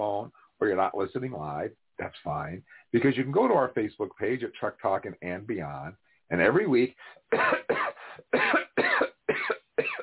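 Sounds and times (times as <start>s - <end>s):
speech: 0.0s - 7.7s
person coughing in a rapid fit: 7.3s - 10.0s.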